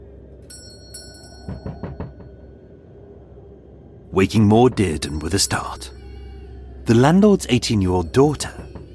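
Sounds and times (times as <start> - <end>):
doorbell chiming at lodgings door: 0.5 - 2.4
heavy banging on a lodgings door: 1.4 - 2.4
speech: 4.2 - 6.0, 6.9 - 8.6.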